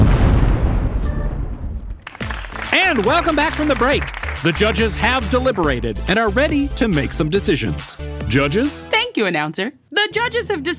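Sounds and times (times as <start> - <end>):
deep explosion of a pair of pants blowing up: 0.0 - 2.0
speech: 2.8 - 10.7.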